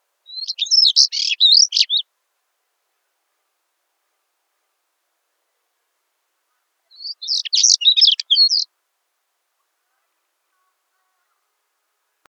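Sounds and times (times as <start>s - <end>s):
stonechat singing: 0.3s - 2.0s, 6.9s - 8.7s.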